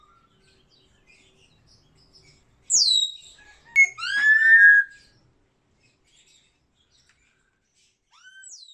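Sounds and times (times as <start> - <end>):
African grey parrot calls: 3.8 - 5.0.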